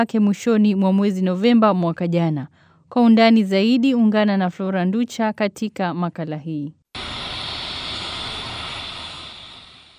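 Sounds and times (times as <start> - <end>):
speech: 0.0 - 6.8
United Nations airplane engine roar landing at Juba airport in South Sudan: 7.0 - 9.9.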